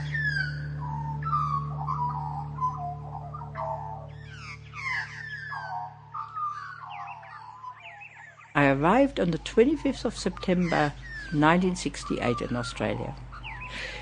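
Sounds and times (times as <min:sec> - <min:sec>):
Australian magpie warbling song: 0:00.0 - 0:14.0
steady low hum: 0:00.0 - 0:14.0
speech: 0:08.6 - 0:14.0.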